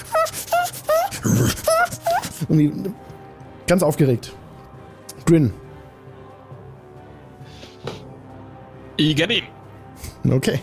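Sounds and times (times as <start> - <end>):
voice imitating an animal whimper: 0.0 - 2.9
speech: 2.5 - 3.1, 3.7 - 4.4, 5.3 - 5.6, 9.0 - 9.6, 10.2 - 10.6.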